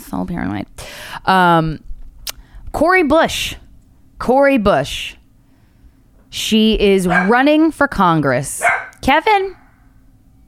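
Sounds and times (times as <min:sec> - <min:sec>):
speech: 0:00.1 - 0:01.9, 0:02.7 - 0:03.6, 0:04.2 - 0:05.2, 0:06.3 - 0:09.6
dog barking: 0:07.0 - 0:07.5, 0:08.6 - 0:09.0.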